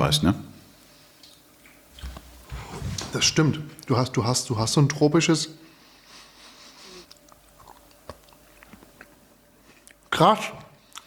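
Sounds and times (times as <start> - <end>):
speech: 0.0 - 0.5, 3.1 - 5.6, 10.2 - 10.6
wet chewing of a soft bite of cheese: 7.0 - 10.0.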